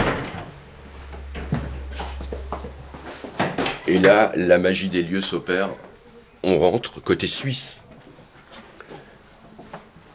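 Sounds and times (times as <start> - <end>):
door opening and closing: 0.0 - 4.1
steady low hum: 0.0 - 6.4
speech: 3.9 - 7.8.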